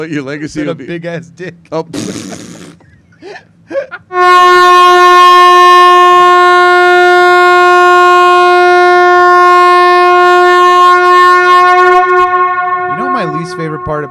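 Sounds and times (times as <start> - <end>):
speech: 0.0 - 2.5, 3.2 - 5.4
laughter: 1.9 - 4.1
brassy air horn blast: 4.1 - 14.0.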